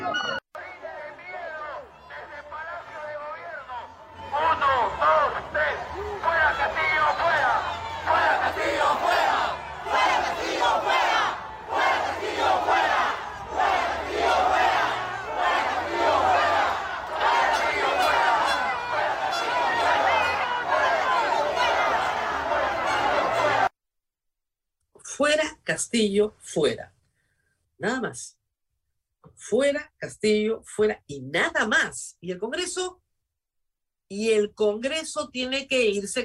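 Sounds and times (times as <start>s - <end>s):
large crowd chanting at a protest march: 0.1s - 23.7s
dense roar of many people: 3.6s - 23.7s
speech: 25.9s - 26.9s, 27.8s - 28.4s, 29.5s - 33.0s, 34.1s - 36.2s.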